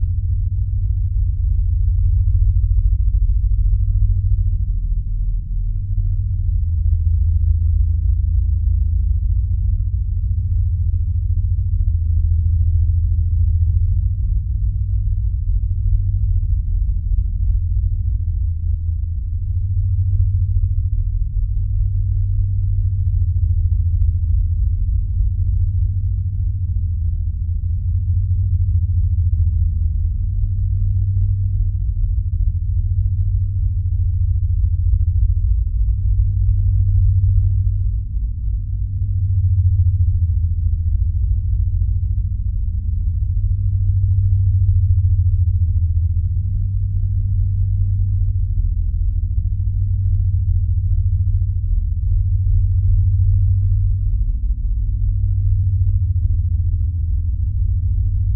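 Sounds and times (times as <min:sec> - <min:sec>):
deep low pounding drone tremor: 0:00.0 - 0:58.3.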